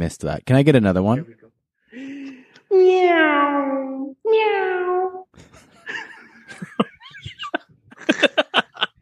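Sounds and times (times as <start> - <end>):
speech: 0.0 - 2.0, 2.7 - 4.6
voice imitating a cat with drawn-out meows: 2.7 - 5.3
laughter: 5.4 - 8.9.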